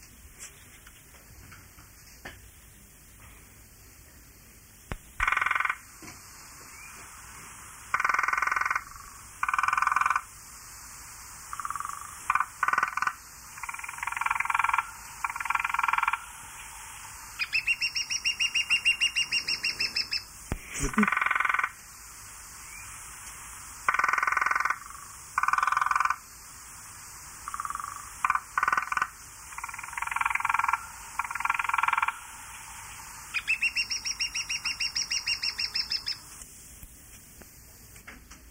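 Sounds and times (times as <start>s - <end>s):
lesser spotted woodpecker giving high thin piping notes: 4.9s - 10.4s, 11.4s - 36.3s
frogs croaking: 4.9s - 36.4s.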